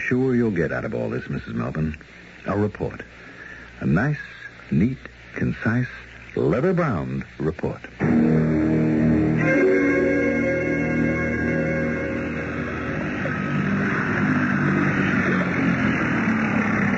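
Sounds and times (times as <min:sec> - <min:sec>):
speech: 0:00.1 - 0:08.4
motorboat engine running out on the water: 0:08.0 - 0:16.9.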